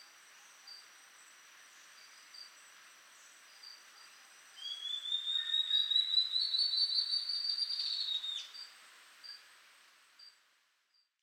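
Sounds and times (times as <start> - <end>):
Ocellated Antbird Phaenostictus mcleannani mcleannani singing whistled series: 4.6 - 8.6.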